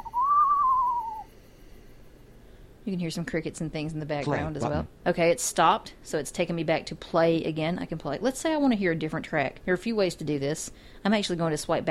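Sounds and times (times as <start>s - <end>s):
screech owl call played from a recording: 0.0s - 1.3s
speech: 2.9s - 11.8s.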